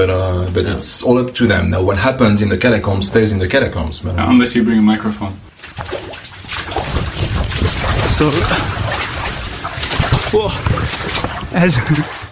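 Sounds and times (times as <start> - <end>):
speech: 0.0 - 6.2, 8.1 - 8.9, 10.3 - 12.2
feet wading and splashing through water in underground catacomb tunnels: 5.5 - 12.3.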